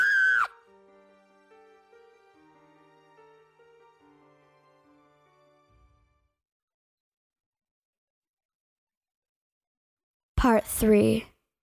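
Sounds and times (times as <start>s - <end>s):
loud shrill scream: 0.0s - 0.7s
speech: 10.4s - 11.3s.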